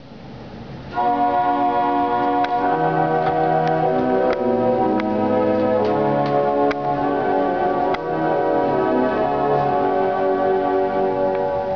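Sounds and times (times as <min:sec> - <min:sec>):
pipe organ playing on voix celeste stop: 0:00.9 - 0:11.7.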